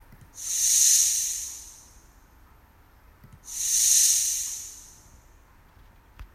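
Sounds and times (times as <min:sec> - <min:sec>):
snake hissing: 0:00.4 - 0:02.0, 0:03.4 - 0:05.1.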